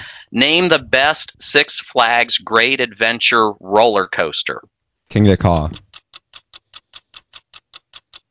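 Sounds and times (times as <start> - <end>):
speech: 0.3 - 5.8
clock timer ticking during a timed quiz round: 5.4 - 8.2.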